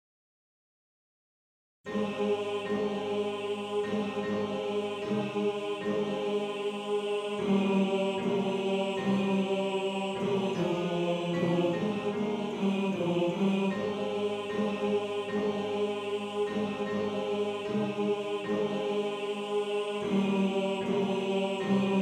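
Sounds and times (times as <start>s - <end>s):
second tenor voice of a male choir: 1.9s - 22.0s.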